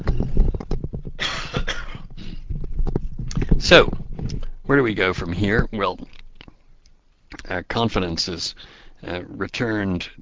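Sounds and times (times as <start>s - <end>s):
soft thumps and rustling of microphone handling: 0.0s - 6.2s
short harsh breathy coughing: 1.2s - 2.5s
speech: 3.7s - 4.0s, 4.7s - 6.2s, 7.5s - 10.1s.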